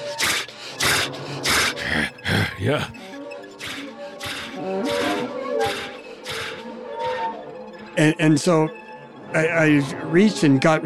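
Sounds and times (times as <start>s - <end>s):
animal biting a person's leg huffing and breathing heavily: 0.0s - 3.0s, 3.6s - 6.8s
speech: 2.6s - 3.0s, 8.0s - 10.8s.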